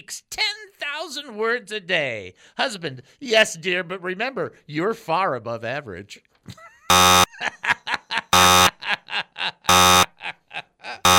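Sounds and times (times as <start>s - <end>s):
speech: 0.1s - 8.0s
bursts of laughter: 6.5s - 11.1s
harsh loud game show buzzer: 6.9s - 7.3s, 8.3s - 8.8s, 9.7s - 10.1s.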